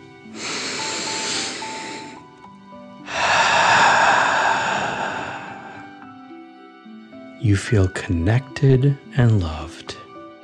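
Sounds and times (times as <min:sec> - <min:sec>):
slow deep breath in through the nose and forceful exhale through the mouth: 0:00.2 - 0:02.4, 0:03.0 - 0:06.2
speech: 0:07.4 - 0:09.8.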